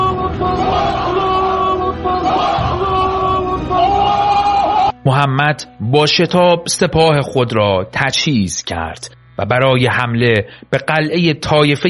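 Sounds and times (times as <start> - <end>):
large crowd of followers shouting a battle cry in unison: 0.0 - 5.0
speech: 5.0 - 11.8.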